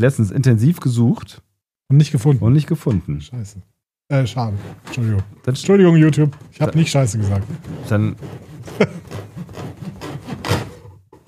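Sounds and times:
speech: 0.0s - 9.6s
saw rasping strokes: 4.3s - 5.1s, 6.4s - 10.8s.

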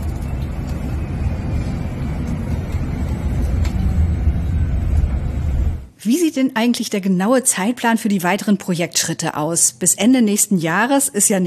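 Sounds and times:
quiet electric city bus driving with low rumble and road noise: 0.0s - 5.9s
speech: 6.1s - 11.4s.

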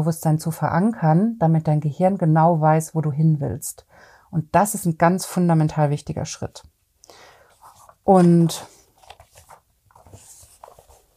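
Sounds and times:
speech: 0.0s - 7.3s, 8.0s - 8.8s
paper pages being flipped: 7.5s - 11.1s.

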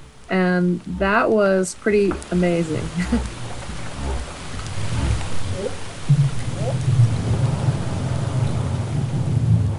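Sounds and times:
steady rumbling underwater noise floor: 0.0s - 9.7s
speech: 0.3s - 3.4s
humpback whale mother and calf low upsweeping whup contact calls: 2.8s - 8.8s
laughter: 2.9s - 3.3s.

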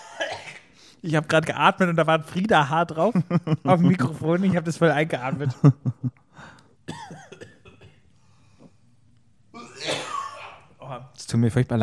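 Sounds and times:
harsh coughing: 0.0s - 0.8s, 6.8s - 8.1s, 9.5s - 10.7s
speech: 0.3s - 7.2s, 10.9s - 11.8s
laughter: 3.0s - 6.2s
throaty breaths: 6.2s - 6.8s, 8.2s - 8.9s.

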